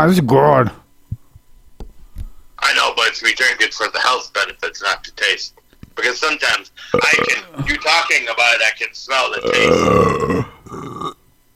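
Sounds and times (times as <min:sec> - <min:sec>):
speech: 0:00.0 - 0:00.8, 0:02.6 - 0:11.0
loud belches: 0:06.9 - 0:07.7, 0:09.4 - 0:11.2.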